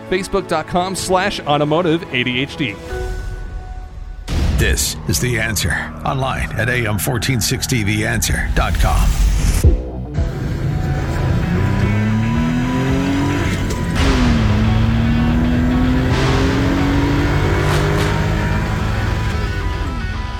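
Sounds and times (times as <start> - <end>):
speech: 0.1 - 3.2, 4.6 - 9.8
Suzuki Carry kei truck engine revving: 10.2 - 20.3.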